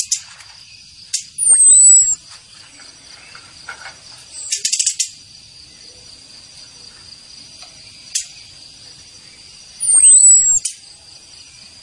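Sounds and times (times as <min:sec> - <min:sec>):
faint constant hum: 0:00.0 - 0:11.8
orange-headed thrush whistling: 0:01.4 - 0:02.2, 0:09.8 - 0:10.7.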